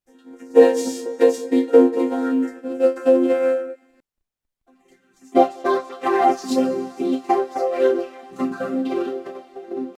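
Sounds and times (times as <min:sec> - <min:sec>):
vocoder voice: 0:00.3 - 0:03.7, 0:05.4 - 0:09.9.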